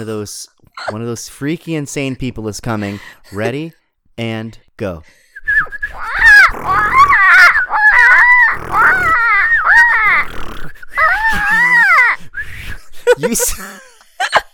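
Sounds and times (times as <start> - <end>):
speech: 0.0 - 5.2, 13.2 - 14.4
two people imitating bird calls: 5.6 - 12.2
grunting wheezy breaths: 5.7 - 12.4.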